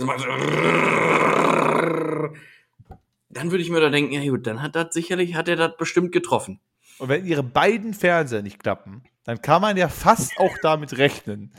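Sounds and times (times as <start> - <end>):
speech: 0.0 - 1.3, 3.4 - 11.5
voice imitating power drill buzz: 10.2 - 10.7.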